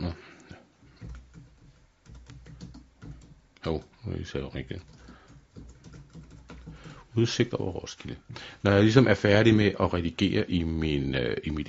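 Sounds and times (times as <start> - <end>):
typing text on a computer keyboard: 0.9 - 3.9, 4.5 - 7.1
speech: 3.6 - 5.0, 7.2 - 11.6.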